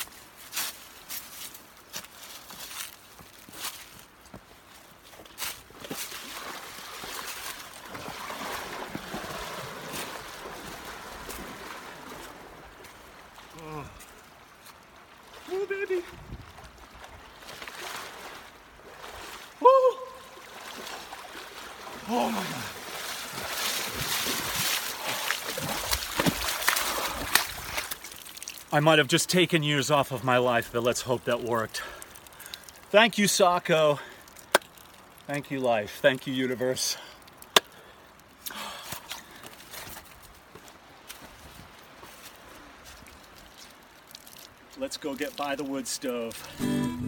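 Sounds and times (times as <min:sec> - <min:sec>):
person wading and swimming in river water at Gangotri: 0:05.4 - 0:29.2, 0:30.3 - 0:46.6
sharper louder splash: 0:06.1 - 0:12.6, 0:17.6 - 0:28.8
speech: 0:28.8 - 0:32.0, 0:32.9 - 0:34.1, 0:35.3 - 0:37.0, 0:45.0 - 0:46.9.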